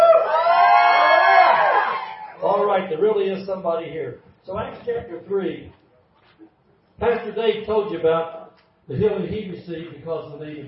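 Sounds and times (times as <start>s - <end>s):
church audience shouting and whooping during a sermon: 0.0s - 2.5s
speech: 3.0s - 5.8s, 6.4s - 10.6s.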